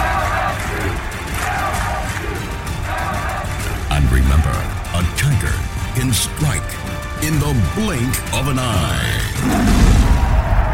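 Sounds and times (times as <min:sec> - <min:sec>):
big baseball stadium crowd roaring: 0:00.0 - 0:06.1, 0:08.8 - 0:10.7
speech: 0:06.0 - 0:06.7, 0:07.3 - 0:09.9.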